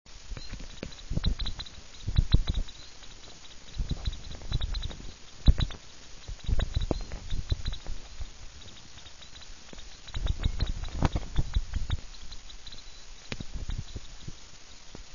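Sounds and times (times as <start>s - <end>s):
degu vocalizing: 0.6s - 14.6s.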